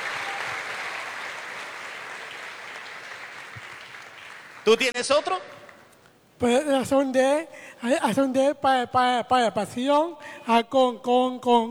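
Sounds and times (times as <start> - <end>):
crowd applause for a group of children: 0.0 - 4.9
speech: 4.7 - 5.6, 6.4 - 11.6.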